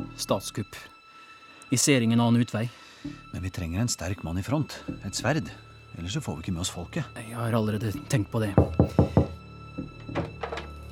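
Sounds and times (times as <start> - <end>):
speech: 0.2 - 1.0, 1.7 - 9.3
man knocking on a door: 8.6 - 10.7.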